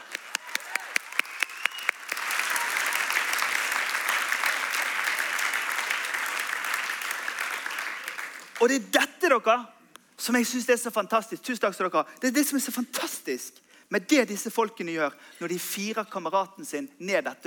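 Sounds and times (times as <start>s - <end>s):
crowd applause: 0.0s - 8.6s
speech: 8.6s - 17.4s.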